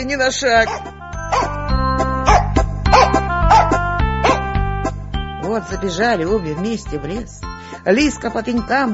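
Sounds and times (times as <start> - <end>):
speech: 0.0 - 1.0, 5.5 - 8.9
dog barking in sharp yaps: 0.6 - 1.6, 2.2 - 4.5.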